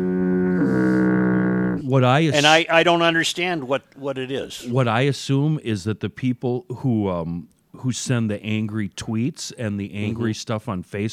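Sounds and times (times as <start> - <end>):
foghorn blast with deep buzzing tone: 0.0 - 1.8
speech: 1.9 - 11.1.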